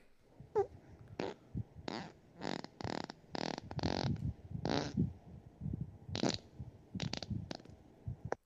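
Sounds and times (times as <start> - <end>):
fart sound effects: 0.6 - 5.1, 6.1 - 6.4, 7.0 - 7.7.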